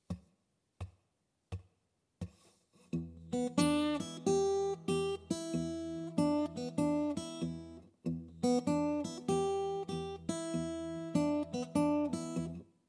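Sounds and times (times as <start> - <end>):
blues guitar in open tuning playing: 3.0 - 12.6.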